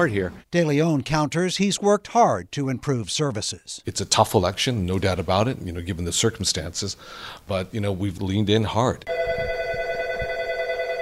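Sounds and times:
speech: 0:00.0 - 0:09.5
office telephone ringing with electronic trill: 0:09.1 - 0:11.0.

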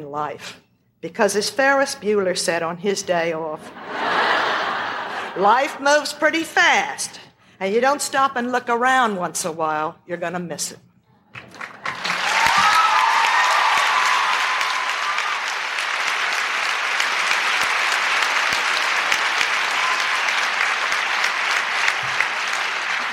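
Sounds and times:
speech: 0:00.0 - 0:04.5, 0:05.4 - 0:10.9
laughter: 0:03.7 - 0:05.6
large audience applause: 0:11.4 - 0:23.1
person cheering: 0:12.2 - 0:15.7.

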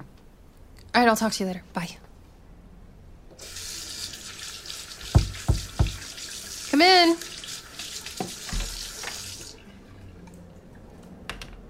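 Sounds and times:
speech: 0:01.0 - 0:02.1
water running from a tap: 0:03.4 - 0:09.6
dull knocks: 0:05.2 - 0:06.0.

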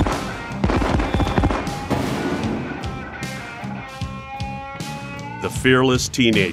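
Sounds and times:
firework rocket bursts booming and crackling high in the air: 0:00.0 - 0:03.6
speech: 0:05.4 - 0:06.5.

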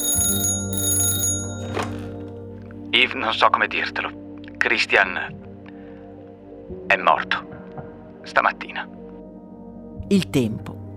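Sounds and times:
telephone ringing with metallic bell tone in a fashion designer's studio: 0:00.0 - 0:02.4
speech: 0:03.0 - 0:05.4, 0:06.9 - 0:07.5, 0:08.2 - 0:09.0, 0:10.1 - 0:10.8.

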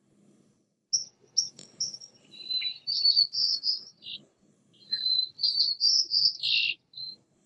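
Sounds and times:
white-crowned sparrow singing: 0:01.0 - 0:04.2, 0:04.8 - 0:07.2.

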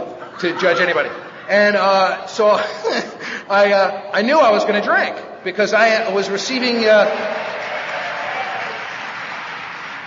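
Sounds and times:
laughter: 0:00.0 - 0:03.3
speech: 0:00.4 - 0:07.4
audience applause: 0:07.0 - 0:10.0.

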